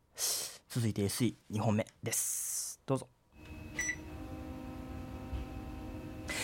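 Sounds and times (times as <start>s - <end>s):
speech: 0.7s - 3.2s
short double electronic beep from an air conditioner: 3.4s - 4.3s
air conditioner running with a steady low mechanical hum: 3.4s - 6.4s.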